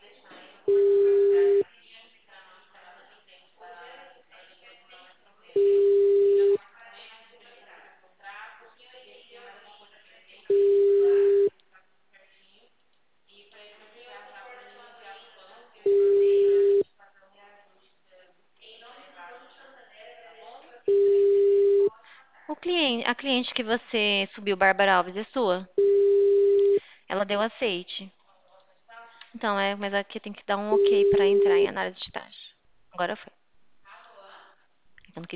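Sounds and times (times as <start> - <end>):
unanswered telephone line low ringing tone: 0.7 - 1.6, 5.6 - 6.6, 10.5 - 11.5, 15.9 - 16.8, 20.9 - 21.9, 25.8 - 26.8, 30.8 - 31.6
speech: 23.1 - 25.8, 27.1 - 28.2, 29.3 - 32.4, 33.0 - 33.3, 35.2 - 35.3.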